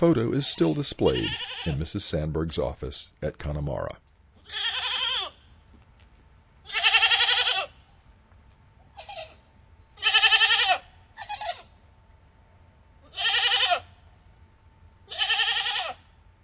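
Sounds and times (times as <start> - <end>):
speech: 0.0 - 4.8
low hum of noise: 0.0 - 16.4
goats bleating in a dairy barn in Chatham County: 0.4 - 1.8, 4.4 - 5.5, 6.7 - 7.8, 9.0 - 9.4, 10.0 - 11.7, 13.0 - 13.9, 15.1 - 16.0.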